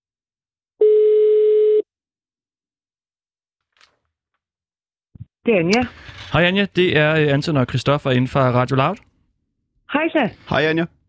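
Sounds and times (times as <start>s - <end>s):
telephone ringing tone of an outgoing call: 0.8s - 1.8s
speech: 5.5s - 9.1s, 10.0s - 11.0s.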